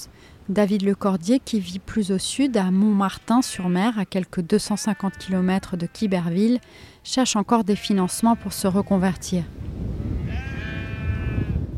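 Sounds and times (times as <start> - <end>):
speech: 0.5 - 9.9
black-headed salt-meadow sheep bleating on a windswept farm in Normandy France: 4.6 - 6.8, 7.6 - 9.2, 10.2 - 11.6
low rumble of wind on a windswept farm: 8.1 - 11.7.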